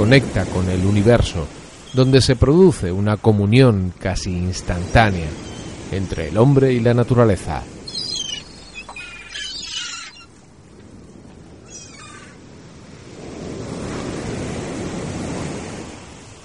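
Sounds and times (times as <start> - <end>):
speech: 0.0 - 7.7
giant Atlantic Ocean waves crashing on the north beach: 0.0 - 16.4
high wailing bird-like cries: 5.4 - 5.8, 7.8 - 10.4, 11.6 - 12.4.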